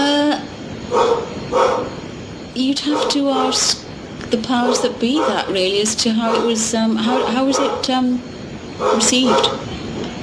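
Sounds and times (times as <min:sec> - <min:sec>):
steady hum: 0:00.0 - 0:10.2
large dog barking: 0:00.9 - 0:02.0, 0:02.8 - 0:03.8, 0:04.5 - 0:08.1, 0:08.8 - 0:09.7
speech: 0:02.6 - 0:09.7.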